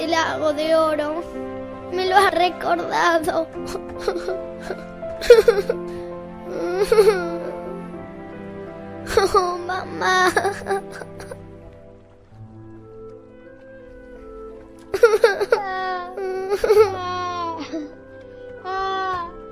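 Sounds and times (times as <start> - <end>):
speech: 0.1 - 6.0, 6.8 - 7.4, 9.1 - 11.4, 14.9 - 18.0
orphaned children crying and wailing: 3.4 - 8.0, 9.0 - 11.4, 14.9 - 18.0, 18.6 - 19.4.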